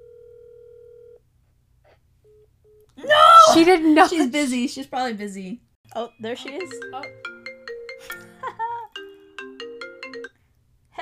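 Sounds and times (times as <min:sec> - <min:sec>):
telephone dial tone: 0:00.0 - 0:01.2
speech: 0:02.3 - 0:07.3.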